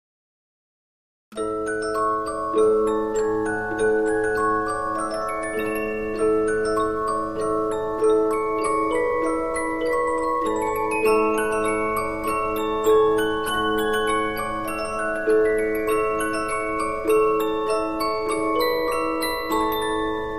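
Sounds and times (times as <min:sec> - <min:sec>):
15-inch Polyphon music box: 0:01.4 - 0:20.3.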